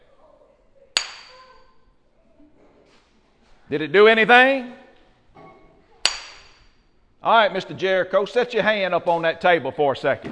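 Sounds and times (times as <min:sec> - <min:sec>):
hammer striking a rock: 0:01.0 - 0:01.4, 0:06.1 - 0:06.6
speech: 0:03.7 - 0:04.8, 0:07.2 - 0:10.3.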